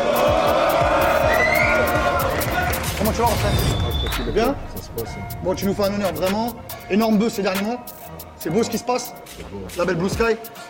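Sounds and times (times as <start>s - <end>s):
scattered claps and whoops from audience: 0.0s - 4.2s
large audience cheering and shouting for a performer: 0.0s - 4.5s
speech: 3.1s - 10.6s.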